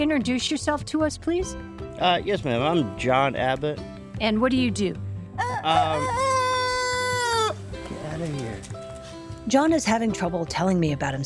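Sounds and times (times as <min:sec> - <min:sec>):
speech: 0:00.0 - 0:06.3, 0:09.5 - 0:11.2
rooster crowing: 0:05.4 - 0:07.6.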